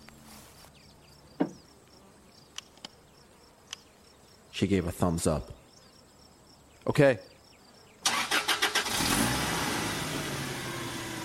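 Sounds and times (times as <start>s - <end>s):
speech: 4.6s - 5.6s, 6.9s - 7.3s
van engine cranking and revving: 8.1s - 11.2s.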